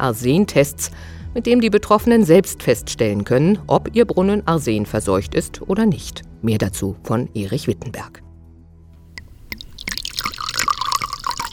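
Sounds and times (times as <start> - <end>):
speech: 0.0 - 8.2
mineral water fizzing and gurgling as it is poured into a glass: 9.1 - 11.5.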